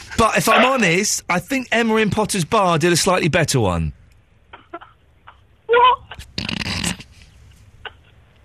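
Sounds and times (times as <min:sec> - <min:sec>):
speech: 0:00.2 - 0:04.0
person imitating dolphin squeaks clicks and whistles: 0:05.8 - 0:07.1.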